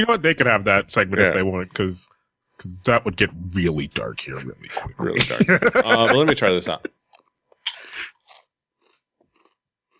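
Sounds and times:
speech: 0:00.0 - 0:07.0
laughter: 0:04.4 - 0:07.0
person biting and chewing a crisp chip snack: 0:07.6 - 0:09.9.

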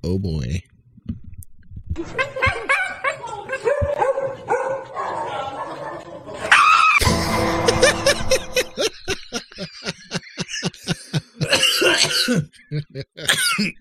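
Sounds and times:
speech: 0:00.0 - 0:00.7, 0:02.0 - 0:02.6
dog barking and yipping in short high calls: 0:02.4 - 0:07.0
laughter: 0:04.4 - 0:13.7.

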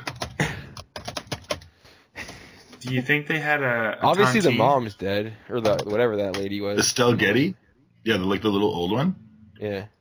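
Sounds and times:
typing on a computer keyboard for a web search: 0:00.0 - 0:03.0, 0:05.6 - 0:06.5
speech: 0:02.8 - 0:09.9.

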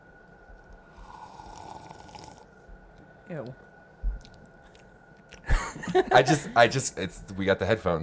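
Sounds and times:
wet slurping sip of a drink: 0:01.0 - 0:02.5
speech: 0:03.3 - 0:03.7, 0:05.7 - 0:08.0
laughter: 0:05.5 - 0:06.9.

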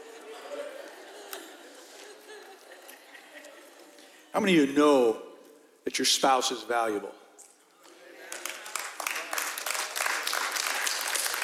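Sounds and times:
laughter: 0:00.0 - 0:04.3
speech: 0:04.4 - 0:05.3, 0:05.9 - 0:07.2
crowd applause: 0:07.8 - 0:11.4.

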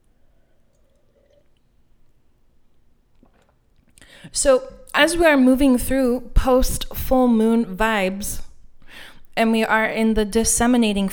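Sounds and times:
person sipping and swallowing water: 0:00.7 - 0:01.7, 0:03.1 - 0:04.1
speech: 0:04.2 - 0:08.4, 0:09.4 - 0:11.1.

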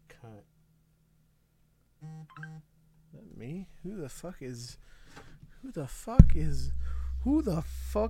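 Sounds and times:
phone buzzing with an incoming call: 0:02.0 - 0:02.6
speech: 0:03.4 - 0:05.0, 0:05.6 - 0:08.0.

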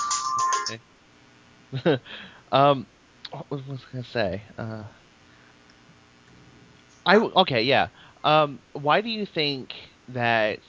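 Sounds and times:
cell phone ringtone: 0:00.0 - 0:00.8
speech: 0:00.7 - 0:00.9, 0:01.7 - 0:05.0, 0:07.1 - 0:10.6.

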